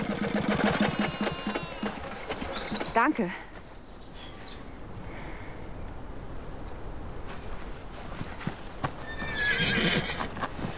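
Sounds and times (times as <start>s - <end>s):
restless horses neighing: 0.4s - 2.9s, 9.0s - 10.7s
speech: 3.0s - 3.4s.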